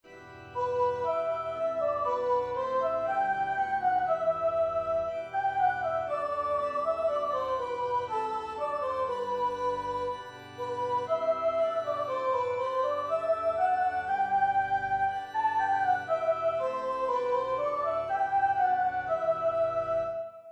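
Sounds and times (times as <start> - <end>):
descant melody: 0.6 - 20.3.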